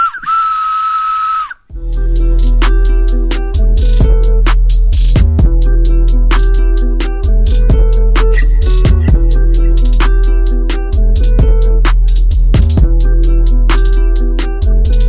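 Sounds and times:
loud train-style whistle with breathy hiss: 0.0s - 1.7s
upbeat music with heavy bass line: 1.7s - 15.0s.

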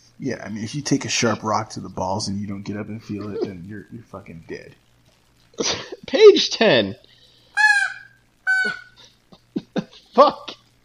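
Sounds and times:
speech: 0.2s - 4.9s, 5.6s - 7.1s, 8.6s - 8.8s, 10.2s - 10.6s
loud harsh parrot squawks: 7.5s - 9.0s.

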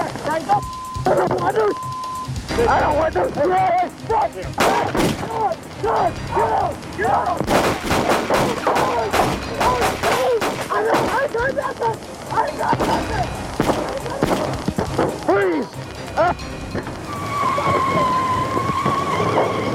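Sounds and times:
people talking: 0.0s - 16.4s, 17.3s - 19.6s
gunfire at point-blank range between officers and gunman: 4.6s - 5.3s, 7.4s - 11.4s, 13.6s - 15.2s.

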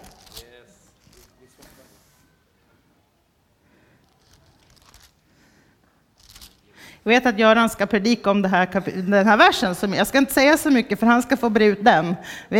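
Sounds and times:
paper pages being leafed through: 0.0s - 2.2s, 4.0s - 5.2s, 6.2s - 6.7s
faint low noise: 0.0s - 12.5s
speech: 7.0s - 12.5s.

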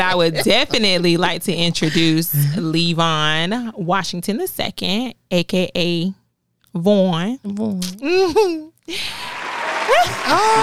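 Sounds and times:
speech: 0.1s - 6.2s, 6.8s - 9.3s, 9.9s - 10.6s
audience clapping: 9.1s - 10.6s
cheers and shouts from audience: 9.4s - 10.6s
loud whooping voice: 9.9s - 10.6s.

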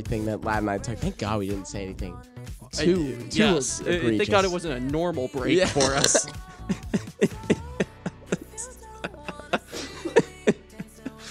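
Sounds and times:
speech: 0.0s - 7.0s
person laughing and coughing at once into radio studio mics: 5.6s - 11.2s.

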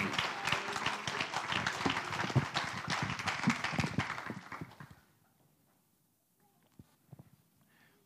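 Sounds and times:
audience applause: 0.0s - 5.0s.

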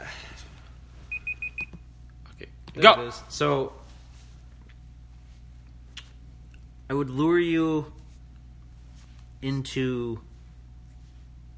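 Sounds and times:
low steady hum: 0.0s - 11.5s
timer alarm beeping in short high-pitched electronic tones: 1.1s - 1.7s
speech: 2.8s - 3.8s, 6.9s - 8.0s, 9.4s - 10.3s.

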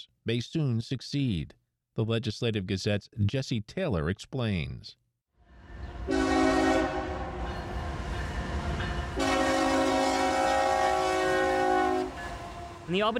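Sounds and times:
speech: 0.0s - 5.0s, 12.9s - 13.1s
train rumbling past: 5.5s - 13.1s
railcars rattling: 5.6s - 13.1s
train horn blasts: 6.0s - 7.7s, 9.0s - 12.9s.

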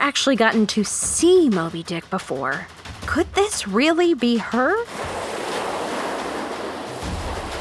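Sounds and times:
speech: 0.1s - 5.2s
rough waves crashing against a ship's hull: 4.9s - 7.5s.

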